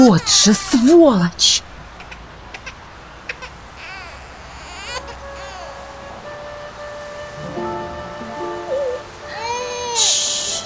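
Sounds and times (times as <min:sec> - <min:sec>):
speech: 0:00.0 - 0:01.7
low hiss: 0:00.0 - 0:10.6
baby boy crying in high-pitched wails: 0:02.0 - 0:05.8, 0:08.7 - 0:10.6.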